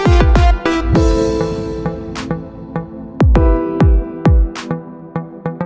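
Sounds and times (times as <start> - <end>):
Azeri bass music: 0.1 - 4.5.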